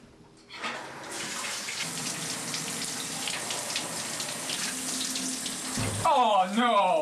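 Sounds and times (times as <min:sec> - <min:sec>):
shower water spraying and splashing: 0:01.1 - 0:06.1
speech: 0:06.0 - 0:06.9.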